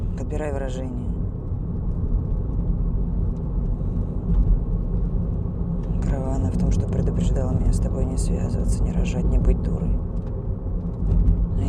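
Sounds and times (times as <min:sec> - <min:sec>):
car driving: 0:00.0 - 0:11.6
speech: 0:00.3 - 0:01.2, 0:06.5 - 0:10.2.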